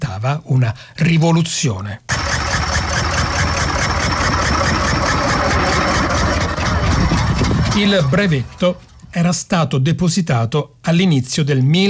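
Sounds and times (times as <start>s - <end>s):
speech: 0.2s - 2.2s, 7.8s - 11.8s
early petrol car engine idling: 2.1s - 9.1s.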